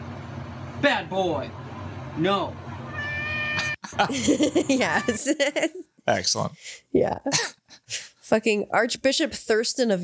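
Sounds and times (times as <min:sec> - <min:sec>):
speech: 0:00.8 - 0:02.7, 0:03.9 - 0:10.0
cat meowing: 0:02.9 - 0:03.8, 0:04.8 - 0:05.2
laughter: 0:03.6 - 0:05.8.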